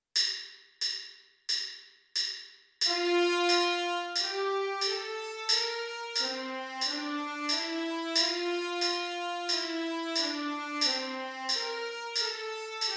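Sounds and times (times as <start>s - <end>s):
trumpet playing a G major scale: 2.9s - 12.9s.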